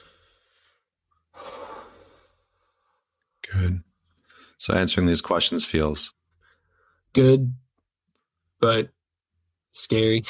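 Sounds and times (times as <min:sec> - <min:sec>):
deep breath during a guided breathing exercise: 0:00.0 - 0:03.1, 0:06.4 - 0:07.1
speech: 0:04.6 - 0:06.2, 0:07.2 - 0:07.6, 0:08.6 - 0:09.0, 0:09.8 - 0:10.2.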